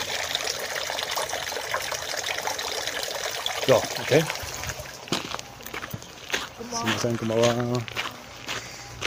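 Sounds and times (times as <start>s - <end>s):
water trickling into a shrine purification basin: 0.0s - 5.1s
speech: 3.7s - 4.4s, 6.8s - 8.0s.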